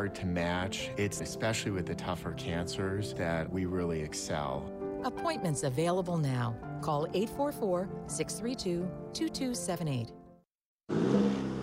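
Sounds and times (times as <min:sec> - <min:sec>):
speech: 0:00.0 - 0:10.2, 0:10.9 - 0:11.2
2023 Chevy Silverado pickup truck 2.7-liter high-output turbo engine revving roar: 0:10.9 - 0:11.6.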